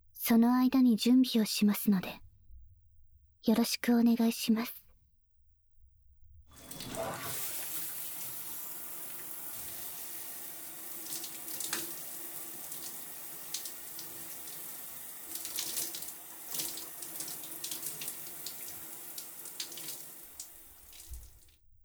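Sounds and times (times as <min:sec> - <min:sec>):
speech: 0:00.3 - 0:02.2, 0:03.4 - 0:04.8
shower water running: 0:06.5 - 0:21.6.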